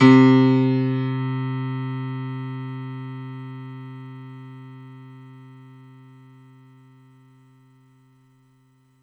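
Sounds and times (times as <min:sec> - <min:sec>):
stereo grand piano on a synthesizer: 0:00.0 - 0:06.2.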